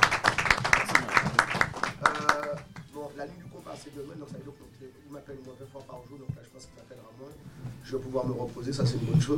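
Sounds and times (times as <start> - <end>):
audience applauding: 0.0 - 3.1
speech: 3.2 - 9.3.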